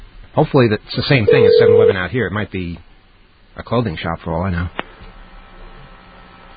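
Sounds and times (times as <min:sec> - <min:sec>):
speech: 0:00.4 - 0:02.9, 0:03.6 - 0:04.8
telephone keypad dialing tones: 0:01.3 - 0:02.0.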